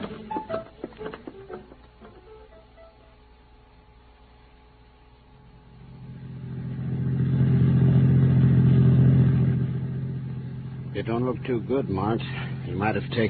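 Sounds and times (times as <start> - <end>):
car engine cranking, idling and revving as the car pulls away: 5.6 - 13.2
speech: 11.1 - 13.2.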